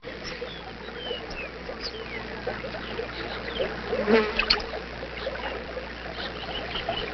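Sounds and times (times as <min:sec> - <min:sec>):
swamp ambience: 0:00.0 - 0:07.1.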